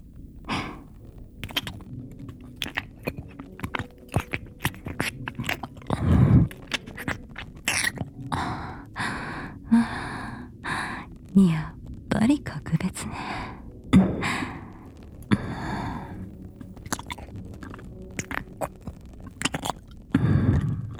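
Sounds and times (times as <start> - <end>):
breathy sighs and gasps: 0.4 - 1.0, 4.8 - 11.3, 13.0 - 16.4, 20.1 - 20.9
wet sucking sounds at the ear: 0.5 - 9.2, 14.6 - 20.9.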